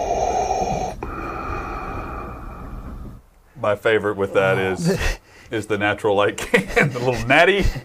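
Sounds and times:
person imitating a masked villain's mechanical respirator breathing: 0.0 - 3.2
speech: 3.6 - 7.8.

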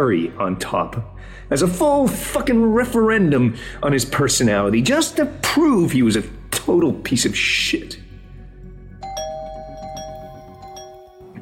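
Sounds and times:
speech: 0.0 - 8.0
doorbell chiming: 9.0 - 11.4.

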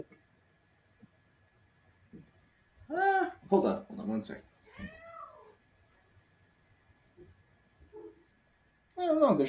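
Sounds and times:
speech: 3.5 - 4.9, 9.3 - 9.4
faint short cat chirps: 4.7 - 5.5
cat meowing under a desk: 4.7 - 5.6.

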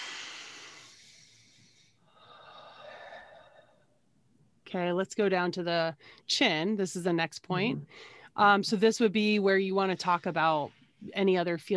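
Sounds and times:
deep breath in and out: 0.0 - 3.9, 7.9 - 8.3
speech: 4.7 - 11.7.

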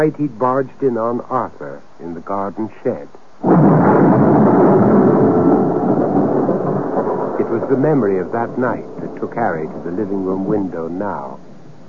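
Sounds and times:
speech: 0.0 - 4.8, 7.7 - 11.5
thunder rolling during a storm: 3.4 - 11.8.

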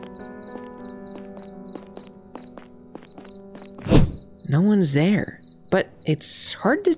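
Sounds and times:
footsteps walking along a hard street surface: 0.0 - 4.4
speech: 4.5 - 6.9.

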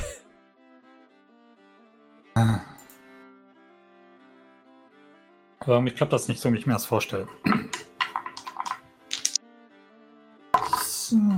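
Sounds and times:
speech: 2.4 - 2.8, 5.6 - 7.6
fancy Las Vegas dice rolled and clattering: 7.6 - 9.4, 10.6 - 11.0.

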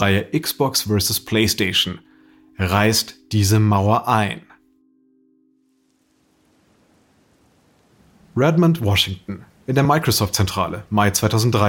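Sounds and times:
speech: 0.0 - 4.5, 8.4 - 11.6
heavy rain: 5.8 - 11.6.

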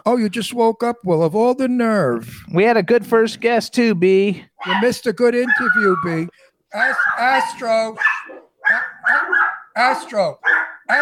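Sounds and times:
speech: 0.0 - 8.1, 8.7 - 11.0
dog barking at a person riding a bicycle: 4.6 - 6.2, 6.8 - 10.9.

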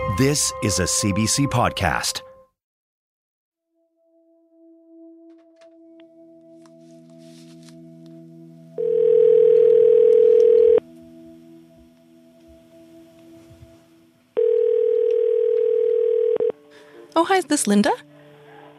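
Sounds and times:
speech: 0.2 - 2.3, 17.3 - 18.1
telephone ringing as a call goes out: 8.8 - 10.8, 14.4 - 16.6.

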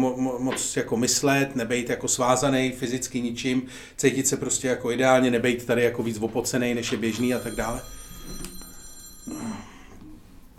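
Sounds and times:
speech: 0.0 - 8.5
mobile phone ringing: 7.0 - 10.1.

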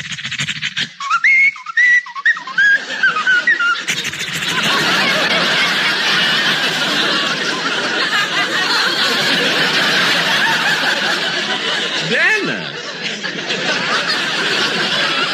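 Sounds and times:
whistled melody: 0.9 - 3.9
laughter: 2.3 - 15.3
loud crowd noise: 2.8 - 15.3.

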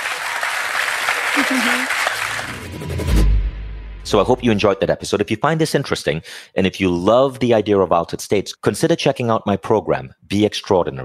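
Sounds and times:
crowd applauding: 0.0 - 2.8
voice calling out: 1.4 - 1.9
speech: 1.4 - 3.2, 4.1 - 11.0.

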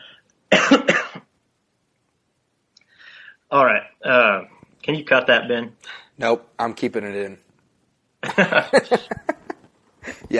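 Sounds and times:
person clearing throat: 0.5 - 1.2
person coughing: 0.5 - 1.2
speech: 3.5 - 7.4, 8.2 - 9.4
laughter: 8.2 - 10.3.

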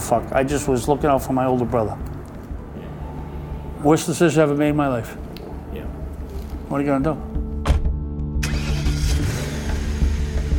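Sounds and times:
speech: 0.1 - 2.1, 3.8 - 6.0, 6.7 - 7.3
car engine starting at night: 7.8 - 10.5
car driving off: 8.4 - 10.5.

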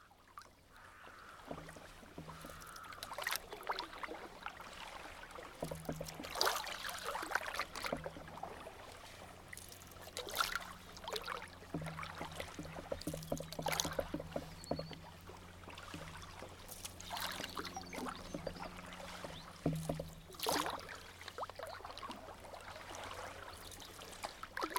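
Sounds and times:
paddle strokes swishing through water on a river: 0.0 - 24.7
low wavering hum: 7.8 - 22.8.

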